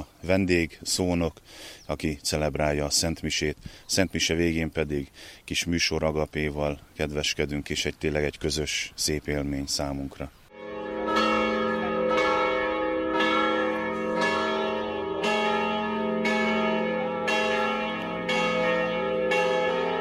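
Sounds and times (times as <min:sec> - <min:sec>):
speech: 0:00.2 - 0:10.4
church bells ringing in a steady repeating peal: 0:10.5 - 0:19.9.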